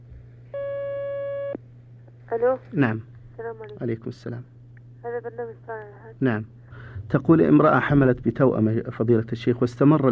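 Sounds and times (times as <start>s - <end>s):
low constant hum: 0.0s - 10.1s
telephone line tone as a phone-in call connects: 0.6s - 1.6s
speech: 2.3s - 10.1s.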